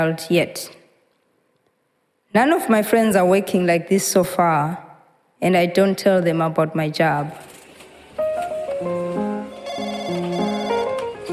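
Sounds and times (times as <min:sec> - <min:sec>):
speech: 0:00.0 - 0:00.8, 0:02.3 - 0:04.8, 0:05.4 - 0:07.5
phone ringing with a melodic electronic ringtone: 0:09.0 - 0:11.3.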